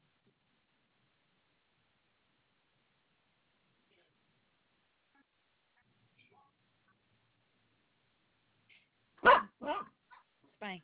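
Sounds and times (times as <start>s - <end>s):
Shih Tzu barking: 9.2s - 10.3s.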